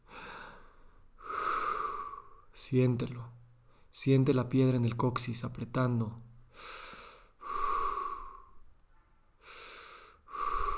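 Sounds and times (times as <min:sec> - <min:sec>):
deep breathing during a guided relaxation exercise: 0:00.0 - 0:02.5, 0:06.5 - 0:08.7, 0:09.4 - 0:10.7
speech: 0:02.6 - 0:03.4, 0:04.0 - 0:06.8.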